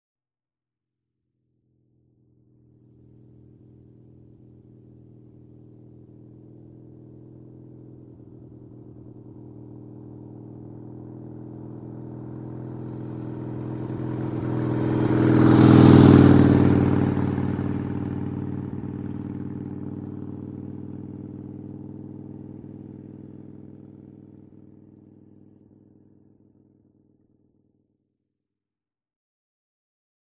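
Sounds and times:
Harley motorcycle passing at 30 mph: 0:02.8 - 0:24.8.

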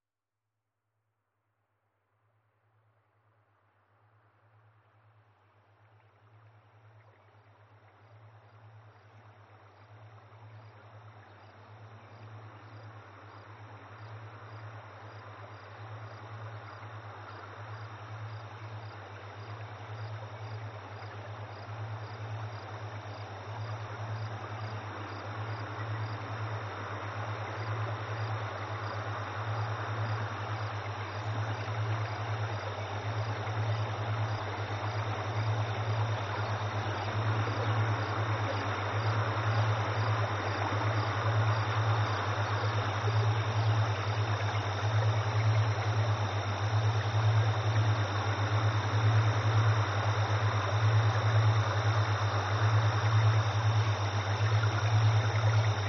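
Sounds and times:
ambience: 0:03.1 - 0:55.8.

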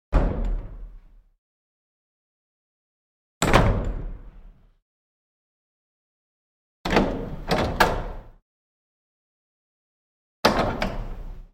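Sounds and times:
wooden vestry door with bolt: 0:00.1 - 0:01.2, 0:03.4 - 0:04.6, 0:06.9 - 0:08.4, 0:10.4 - 0:11.5.

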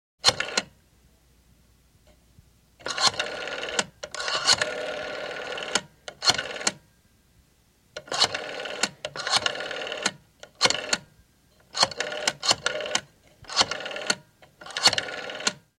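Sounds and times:
rotary phone dialing: 0:02.8 - 0:06.8, 0:08.0 - 0:11.0, 0:11.6 - 0:15.6.

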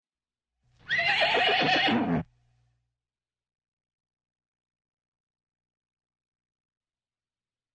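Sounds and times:
horse whinnying: 0:00.8 - 0:02.3.

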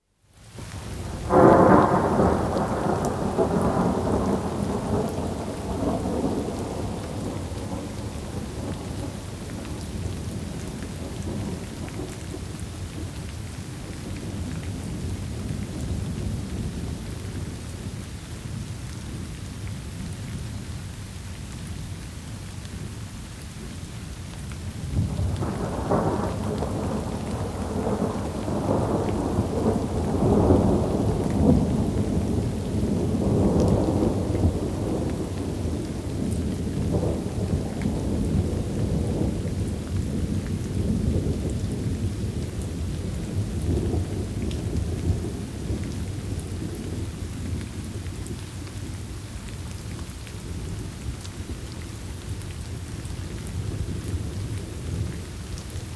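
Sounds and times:
steady rain downpour: 0:00.0 - 0:55.9
thunder: 0:00.8 - 0:17.5, 0:24.8 - 0:47.9.

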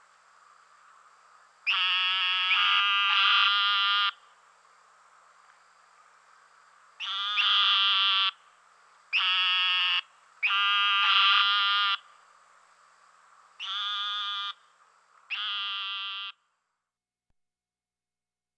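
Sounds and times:
Eastern narrowmouth toad giving nasal buzzing bleats: 0:01.7 - 0:04.2, 0:07.0 - 0:08.4, 0:09.2 - 0:12.0, 0:13.6 - 0:14.6, 0:15.3 - 0:16.4.

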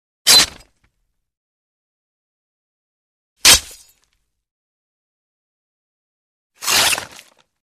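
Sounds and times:
fast sword stab: 0:00.3 - 0:00.7, 0:03.4 - 0:04.0, 0:06.6 - 0:07.4.

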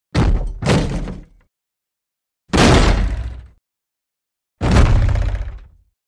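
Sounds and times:
wooden door being broken down with thud impacts: 0:00.2 - 0:01.4, 0:02.5 - 0:03.4, 0:04.6 - 0:05.7.

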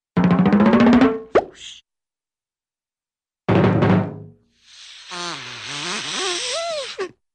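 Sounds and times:
drum roll: 0:00.2 - 0:01.3, 0:03.5 - 0:04.4.

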